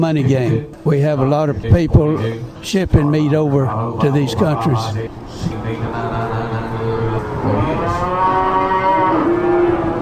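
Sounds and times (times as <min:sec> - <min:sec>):
speech: 0:00.0 - 0:08.2
low murmur of a crowded pen: 0:00.0 - 0:08.4
cows and calves mooing in livestock auction pens: 0:02.2 - 0:05.1, 0:05.9 - 0:10.0.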